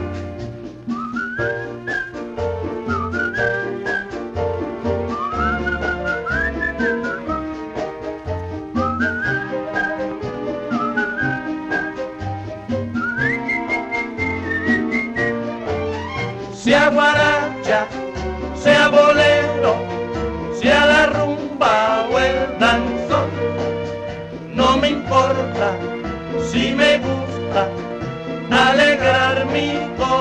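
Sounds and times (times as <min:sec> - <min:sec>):
lively band accompaniment with steady percussion: 0:00.0 - 0:30.1
person whistling a bright wandering melody: 0:00.8 - 0:04.3, 0:05.0 - 0:07.6, 0:08.7 - 0:15.4.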